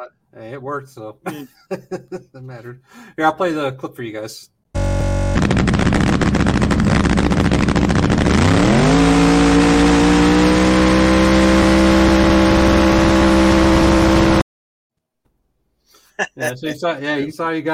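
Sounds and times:
speech: 0:00.0 - 0:05.7, 0:16.3 - 0:17.7
laughter: 0:01.2 - 0:02.8
drag race car engine revving and accelerating during a race: 0:04.8 - 0:14.4.

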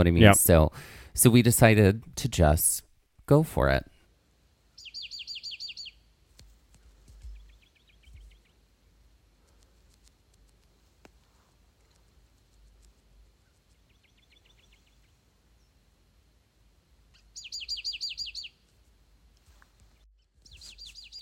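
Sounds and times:
speech: 0:00.0 - 0:03.9
faint outdoor ambience: 0:00.0 - 0:21.2
two birds trading high rapid chirping trills: 0:04.8 - 0:06.1, 0:07.3 - 0:08.6, 0:13.4 - 0:15.8, 0:17.1 - 0:18.6, 0:20.2 - 0:21.2.

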